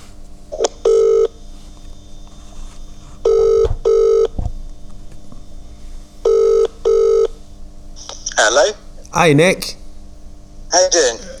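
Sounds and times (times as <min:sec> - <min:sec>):
outgoing phone call ringing tone: 0:00.8 - 0:01.4, 0:03.3 - 0:04.4, 0:06.2 - 0:07.4
speech: 0:08.6 - 0:09.8.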